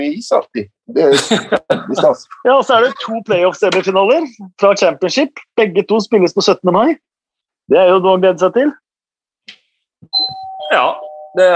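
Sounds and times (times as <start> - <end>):
speech: 0.0 - 7.1, 7.7 - 8.8, 10.7 - 11.5
laughter: 1.1 - 3.2
doorbell ringing with a sustained electronic tone: 10.2 - 11.5.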